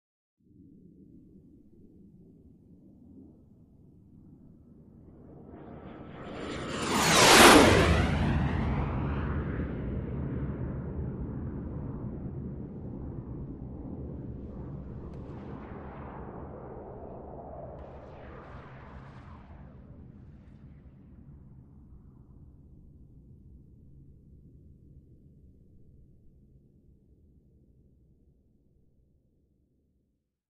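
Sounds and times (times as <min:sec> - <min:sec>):
Gnat flying by low over a canyon: 0:04.7 - 0:23.2.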